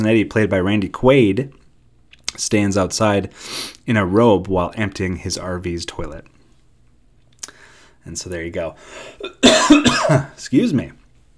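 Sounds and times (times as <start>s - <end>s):
speech: 0.0s - 1.6s, 2.4s - 6.3s, 8.0s - 11.0s
harsh throaty coughs: 9.1s - 10.4s.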